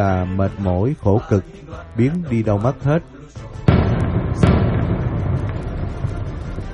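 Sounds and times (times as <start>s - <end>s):
speech: 0.0s - 3.6s
heavy artillery shelling explosions: 3.6s - 6.7s
artillery shelling: 3.7s - 6.7s.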